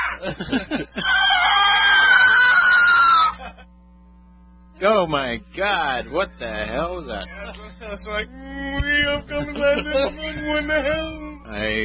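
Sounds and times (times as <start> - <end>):
breathy laugh-like vocal bursts: 0.0 - 1.4
speech: 0.2 - 1.1, 4.8 - 11.8
person screaming into a microphone: 1.0 - 3.4.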